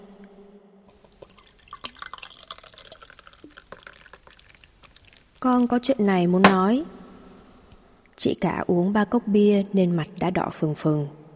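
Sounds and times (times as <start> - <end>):
beer pouring into a glass: 0.9 - 5.5
bubbly crackling beer fizz: 1.0 - 5.8
speech: 5.4 - 7.0, 8.2 - 11.2.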